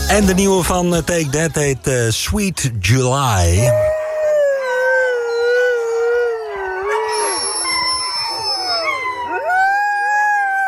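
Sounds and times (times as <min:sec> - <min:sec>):
speech: 0:00.1 - 0:03.9
dog howling: 0:03.7 - 0:10.6.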